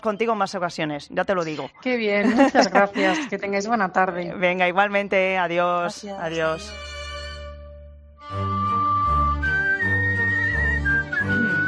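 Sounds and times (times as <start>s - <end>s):
speech: 0.0s - 6.9s
laughter: 2.2s - 3.3s
full instrumental backing music: 6.2s - 11.6s
person whistling a lively melody: 8.4s - 11.6s.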